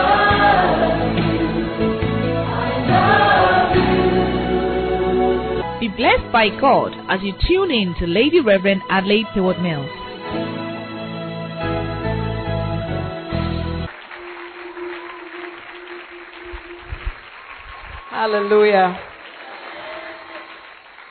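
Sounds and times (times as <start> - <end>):
short burst of music: 0.0 - 17.7
speech: 6.0 - 10.6, 18.2 - 19.1
crowd clapping: 13.9 - 21.1.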